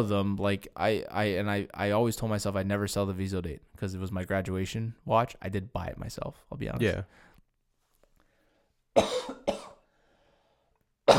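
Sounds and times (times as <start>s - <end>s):
speech: 0.0s - 7.3s, 9.0s - 9.4s
person coughing: 9.0s - 9.8s.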